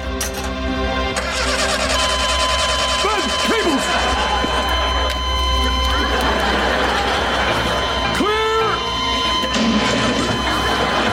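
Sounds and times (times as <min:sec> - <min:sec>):
car engine cranking, trying to start: 0:00.4 - 0:03.8
laughter: 0:03.0 - 0:11.1.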